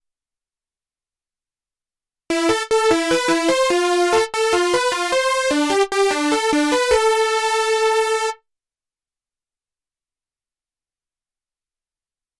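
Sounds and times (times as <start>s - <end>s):
synthesizer lead sound with oscillator, LFO, filter, envelope and drive: 2.3s - 8.4s.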